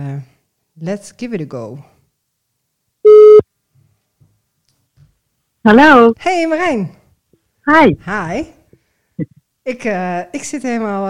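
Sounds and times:
speech: 0:00.0 - 0:01.9, 0:05.6 - 0:07.0, 0:07.7 - 0:08.6, 0:09.2 - 0:11.0
telephone line tone as a call is placed: 0:03.1 - 0:03.4.

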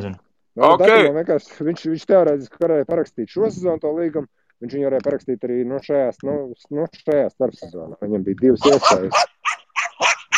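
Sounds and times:
speech: 0:00.0 - 0:09.3, 0:10.0 - 0:10.3
dog barking: 0:08.6 - 0:10.3.

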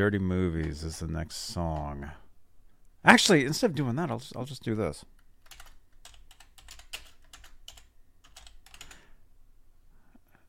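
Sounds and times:
speech: 0:00.0 - 0:02.2, 0:03.0 - 0:05.6
rapid typing on a computer keyboard: 0:05.2 - 0:09.0.

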